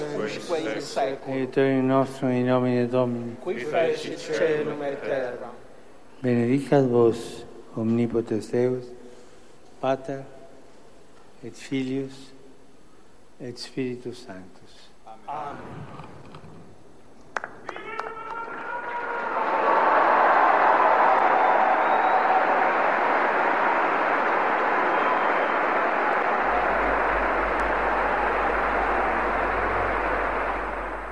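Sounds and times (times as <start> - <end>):
speech: 0.3 - 5.6, 6.2 - 9.0, 9.8 - 10.4, 11.4 - 12.3, 13.4 - 14.6, 15.3 - 16.1
large crowd applauding: 17.3 - 31.1.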